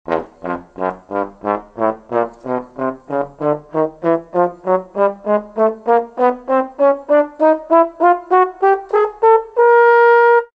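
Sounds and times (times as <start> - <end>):
trombone: 0.1 - 10.5.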